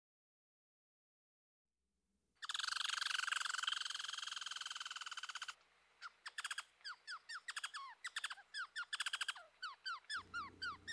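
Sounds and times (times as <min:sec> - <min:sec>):
red squirrel chattering: 0:02.4 - 0:05.6, 0:06.3 - 0:10.9.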